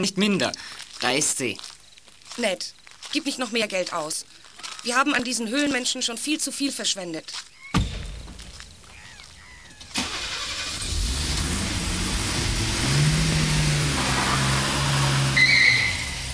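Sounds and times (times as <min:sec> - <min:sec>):
speech: 0:00.0 - 0:01.8, 0:02.4 - 0:07.5
car engine rumble: 0:08.2 - 0:16.3
car starting and driving off: 0:09.9 - 0:16.3.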